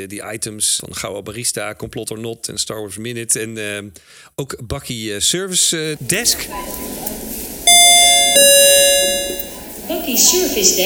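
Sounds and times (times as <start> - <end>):
speech: 0.0 - 7.2, 9.9 - 10.8
two-tone doorbell chime used as a segment jingle: 7.7 - 9.7.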